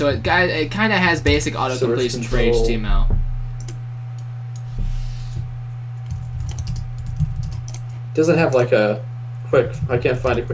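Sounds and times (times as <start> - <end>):
speech: 0.0 - 3.2, 8.2 - 10.5
steady low electrical hum: 0.0 - 10.5
computer keyboard typing: 6.0 - 8.6.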